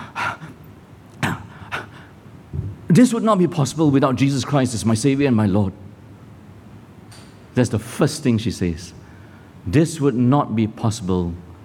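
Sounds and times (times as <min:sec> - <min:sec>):
person imitating heavy panting: 0:00.0 - 0:00.6
speech: 0:03.0 - 0:05.8, 0:07.6 - 0:09.0, 0:09.6 - 0:11.5.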